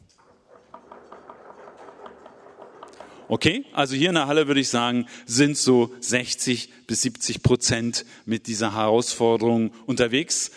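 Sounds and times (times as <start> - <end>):
audience members in a hall knocking on hard surfaces: 0.4 - 3.6
speech: 3.3 - 10.5.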